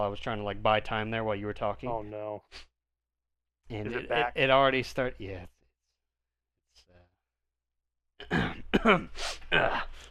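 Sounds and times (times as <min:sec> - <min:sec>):
speech: 0:00.0 - 0:02.7, 0:03.7 - 0:05.6, 0:08.2 - 0:10.1
person clearing throat with rough voiced grunts and breathy rasp: 0:08.2 - 0:09.9.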